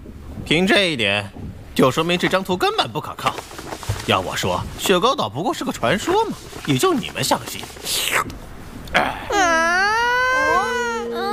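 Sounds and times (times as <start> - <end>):
speech: 0.5 - 9.2
voice imitating a young crocodile crying: 8.9 - 11.3.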